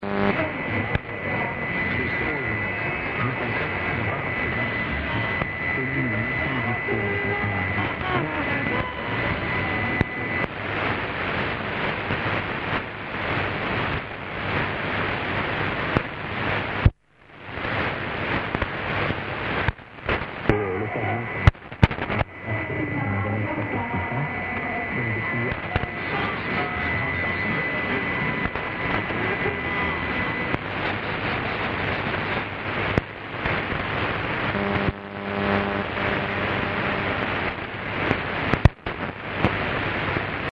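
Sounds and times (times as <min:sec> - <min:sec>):
radio overmodulation distortion on 5415 kHz: 0:00.0 - 0:40.4.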